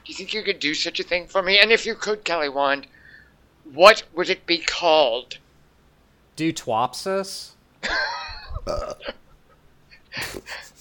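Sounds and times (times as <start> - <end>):
speech: 0.1 - 3.0, 3.6 - 5.4, 6.4 - 9.2, 10.2 - 10.7
loud raspy drawn-out belch: 8.6 - 9.1.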